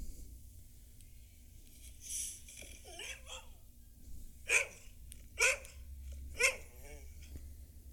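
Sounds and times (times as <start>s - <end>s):
low steady hum: 0.0s - 7.9s
dog of about 13 or 14 years whining or yelping: 2.6s - 3.6s, 6.3s - 7.2s
dog of about 13 or 14 years barking: 2.9s - 3.6s, 4.4s - 7.2s.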